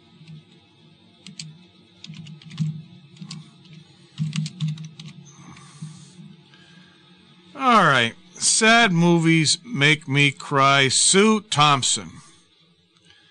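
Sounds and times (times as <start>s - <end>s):
low steady hum: 0.0s - 13.2s
typing on a computer keyboard: 1.2s - 5.2s
speech: 7.6s - 12.2s.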